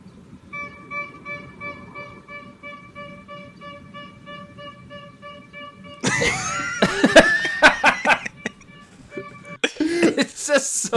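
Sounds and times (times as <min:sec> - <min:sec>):
faint rumble: 0:00.0 - 0:10.9
street corn vendor's horn honking: 0:00.5 - 0:06.2, 0:08.0 - 0:09.6
people laughing and shrieking: 0:06.0 - 0:08.6.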